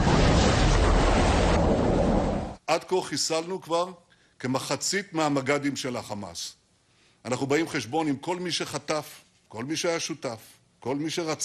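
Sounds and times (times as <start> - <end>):
low rumble: 0.0 - 2.6
roar of water rushing into a tunnel: 0.0 - 2.6
speech: 2.7 - 6.6, 7.2 - 11.4.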